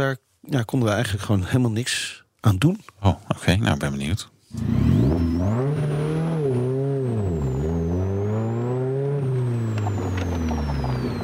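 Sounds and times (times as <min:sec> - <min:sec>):
speech: 0:00.0 - 0:05.8
sports car engine revving on a sunny day: 0:04.5 - 0:11.2.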